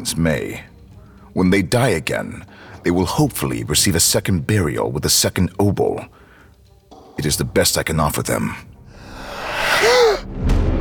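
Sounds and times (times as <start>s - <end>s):
speech: 0.0s - 0.7s, 1.3s - 6.2s, 7.2s - 8.7s
startled gasp: 9.0s - 10.3s.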